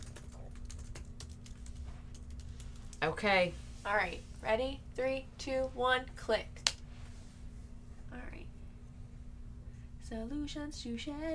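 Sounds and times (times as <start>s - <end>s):
computer keyboard typing a search query: 0.0s - 3.0s
low steady hum: 0.0s - 11.3s
speech: 3.0s - 6.6s, 10.1s - 11.3s.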